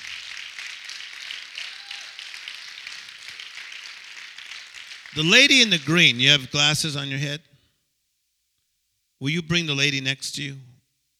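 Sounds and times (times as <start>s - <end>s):
crowd clapping at a preacher's gathering: 0.0s - 6.7s
speech: 5.2s - 7.5s, 9.2s - 10.7s.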